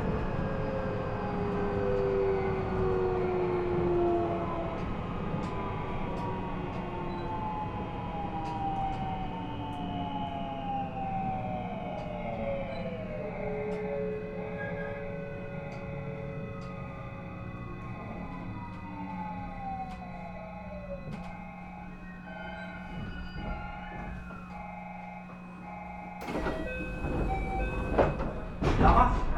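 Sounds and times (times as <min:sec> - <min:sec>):
commuter train rumbling along: 0:00.0 - 0:29.3
commuter train electric motors whining: 0:06.2 - 0:29.1.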